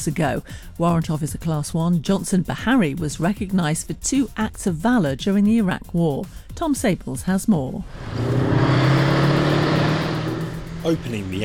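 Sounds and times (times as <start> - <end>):
speech: 0.0 - 8.9, 10.8 - 11.4
Warrior armoured vehicle engine droning while driving laps around an arena: 7.8 - 11.4.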